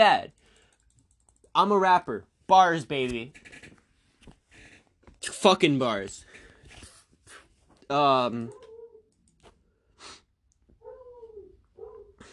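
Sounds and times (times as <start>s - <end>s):
speech: 0.0s - 0.4s, 1.6s - 3.6s, 5.2s - 6.3s, 7.9s - 8.6s
dog yipping and whining: 8.5s - 9.1s, 10.8s - 12.2s
dog barking: 11.8s - 12.2s.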